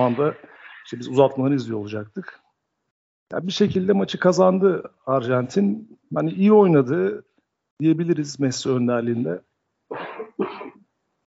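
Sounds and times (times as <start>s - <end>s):
speech: 0.0s - 2.4s, 3.3s - 10.6s
rough throat-clearing coughs: 9.9s - 10.8s.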